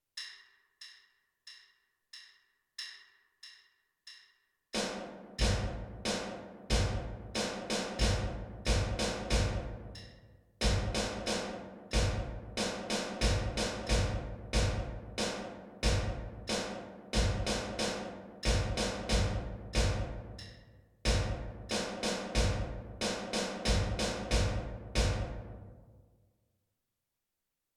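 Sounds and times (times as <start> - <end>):
snare drum: 4.8 - 20.4, 21.1 - 25.4
bass drum: 5.4 - 6.1, 6.7 - 10.0, 10.6 - 11.3, 12.0 - 12.6, 13.2 - 16.6, 17.2 - 17.8, 18.4 - 20.4, 21.1 - 25.7.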